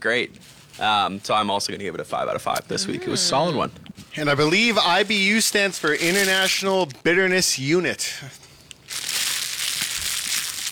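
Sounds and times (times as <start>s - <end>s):
speech: 0.0s - 8.5s
wrapper crumpled against the microphone: 4.5s - 7.0s, 8.7s - 10.7s.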